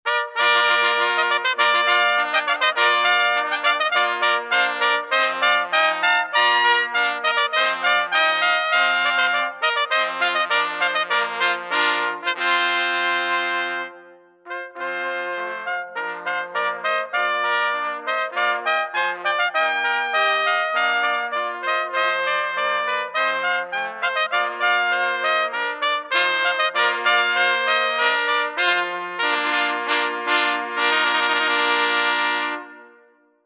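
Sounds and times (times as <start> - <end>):
herald trumpet: 0.0 - 33.3.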